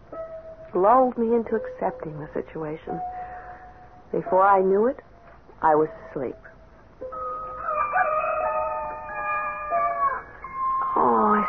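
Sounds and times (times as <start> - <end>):
speech: 0.7 - 3.2, 4.1 - 7.2
rooster crowing: 7.1 - 11.0.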